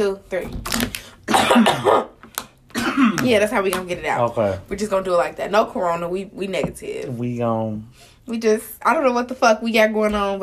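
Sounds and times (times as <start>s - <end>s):
speech: 0.0s - 2.1s, 3.0s - 10.4s
cough: 1.3s - 2.1s, 2.7s - 3.2s.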